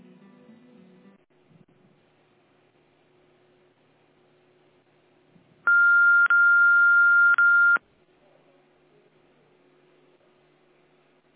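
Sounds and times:
electronic telephone tone while a call is transferred: 5.7s - 7.8s.

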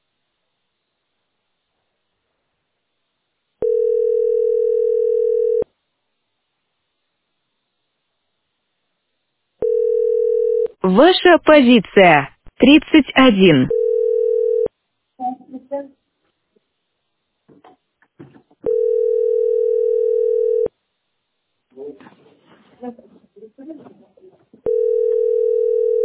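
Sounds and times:
telephone ringback tone buzzing pulses: 3.6s - 5.7s, 9.6s - 10.7s, 13.5s - 14.7s, 18.6s - 20.7s, 24.7s - 26.0s
speech: 10.8s - 13.8s.

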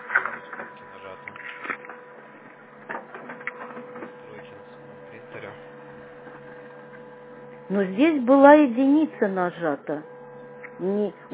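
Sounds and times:
printer clunks as pages feed through: 0.0s - 4.6s
printer printing pages with mechanical whirring and clicking: 0.0s - 11.3s
steady hum: 0.0s - 11.3s
speech: 7.7s - 10.1s, 10.8s - 11.3s.

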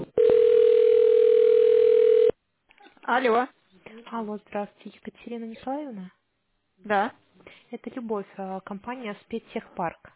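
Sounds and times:
rapid rhythmic telephone line tones during an office call transfer: 0.2s - 2.3s
speech: 3.1s - 3.5s, 4.1s - 6.2s, 6.8s - 10.1s.

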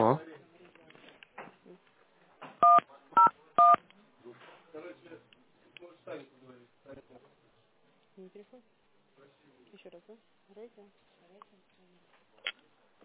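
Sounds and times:
dual-pitched telephone keypad tones while transferring a call: 2.6s - 3.8s
speech: 8.4s - 12.0s.

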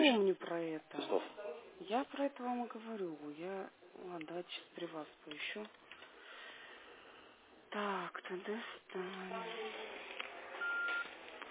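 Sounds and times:
speech: 0.0s - 1.3s, 1.9s - 5.9s, 7.7s - 10.1s
hiss and rumble of a narrow-band phone line: 10.5s - 11.4s
steady electronic beep on a phone line: 10.6s - 11.1s.

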